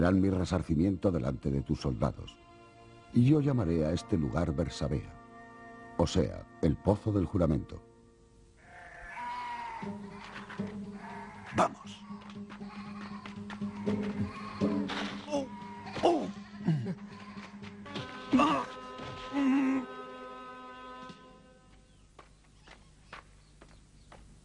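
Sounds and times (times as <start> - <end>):
speech: 0.0 - 2.5, 3.1 - 5.2, 6.0 - 7.9, 9.8 - 10.8, 11.5 - 12.0
quiet outdoor rustling: 7.8 - 24.4
flock of sheep bleating: 8.6 - 17.6.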